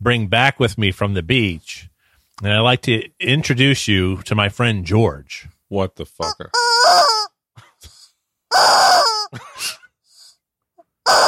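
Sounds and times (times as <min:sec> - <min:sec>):
speech: 0:00.0 - 0:06.6, 0:08.6 - 0:09.7
toy chicken squawking and crowing: 0:06.2 - 0:07.4, 0:08.5 - 0:09.4, 0:11.0 - 0:11.2
toy chicken clucking clicks and rattles: 0:06.6 - 0:07.3, 0:11.1 - 0:11.2.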